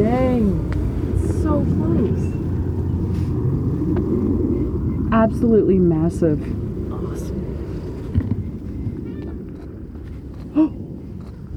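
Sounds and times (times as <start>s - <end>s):
steady low rumbling wind noise: 0.0s - 11.5s
speech: 5.2s - 6.6s
osprey calling: 8.2s - 10.9s.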